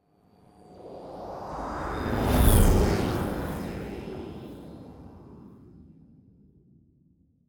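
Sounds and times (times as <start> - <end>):
jet passing by: 1.2 - 4.8.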